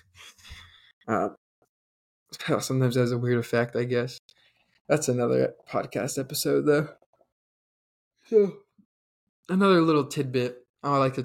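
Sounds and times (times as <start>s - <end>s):
speech: 2.5s - 4.2s, 4.9s - 7.0s, 8.3s - 8.6s, 9.5s - 11.2s
person yawning: 8.3s - 8.6s.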